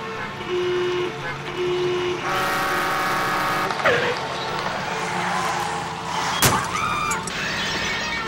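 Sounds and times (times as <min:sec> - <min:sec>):
car horns honking in traffic: 0:00.0 - 0:08.2
steady rumble of vehicles in busy traffic: 0:00.0 - 0:08.2
car crash shattering impact: 0:03.7 - 0:07.3.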